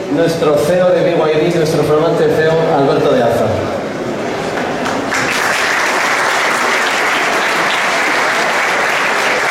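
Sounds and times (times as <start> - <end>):
speech: 0.2 - 3.8
sustained applause from a large audience: 4.5 - 9.5.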